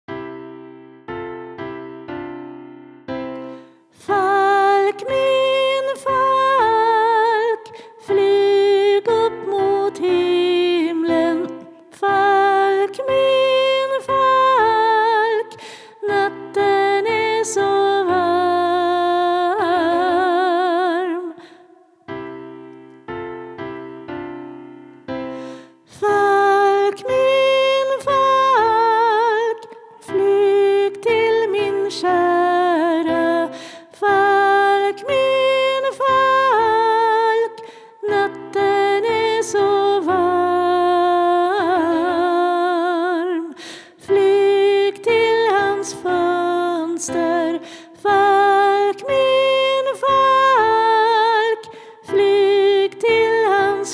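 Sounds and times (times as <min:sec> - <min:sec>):
soprano voices singing: 0:04.0 - 0:21.8, 0:25.9 - 0:53.9.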